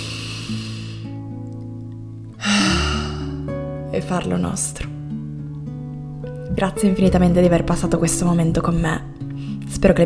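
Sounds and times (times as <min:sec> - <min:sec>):
deep inhale during a guided meditation: 0:00.0 - 0:01.2, 0:02.4 - 0:03.5
soft sustained music: 0:00.0 - 0:10.0
speech: 0:04.0 - 0:04.9, 0:06.6 - 0:09.1, 0:09.8 - 0:10.0.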